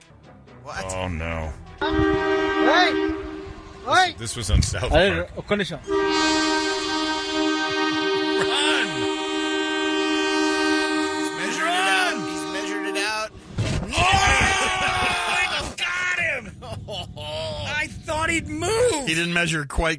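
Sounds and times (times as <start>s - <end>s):
speech: 0.6s - 3.2s, 3.9s - 6.4s, 19.1s - 19.9s
train approaching on the tracks in India, rumbling: 0.8s - 19.4s
train horn blaring in long sustained blasts: 1.6s - 4.4s, 5.8s - 13.4s
laughter: 8.2s - 9.2s, 13.9s - 15.8s, 16.4s - 17.8s
excited voices shouting and talking: 13.8s - 16.6s.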